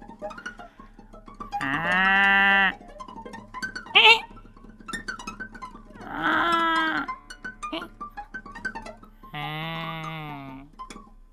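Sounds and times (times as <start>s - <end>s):
speech: 1.6s - 2.2s
sheep bleating: 1.6s - 2.8s, 6.0s - 7.1s, 9.3s - 10.7s
spoken exclamation: 4.0s - 4.2s, 6.0s - 7.1s, 9.4s - 10.6s.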